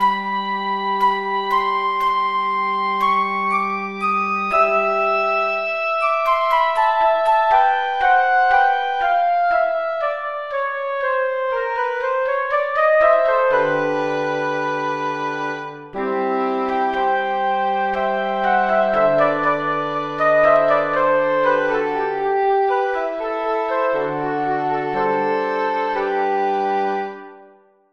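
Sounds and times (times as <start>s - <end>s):
orchestral woodwinds: 0.0s - 27.4s.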